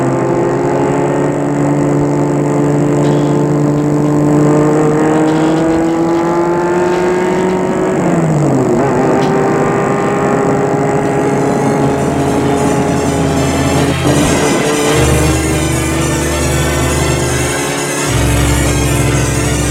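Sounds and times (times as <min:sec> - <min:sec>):
car engine drone driving from the airport to Lyon: 0:00.0 - 0:19.6.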